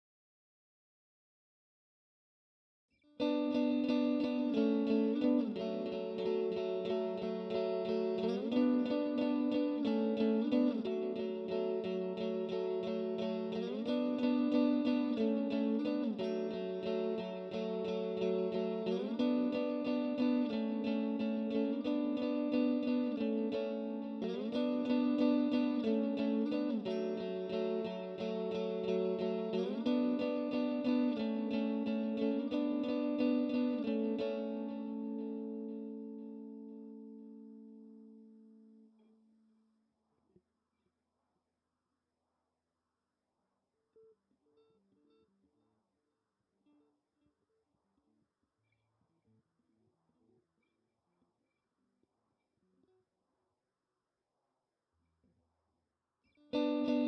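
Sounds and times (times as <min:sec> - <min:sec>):
lead guitars: 0:03.2 - 0:39.3, 0:56.4 - 0:57.0.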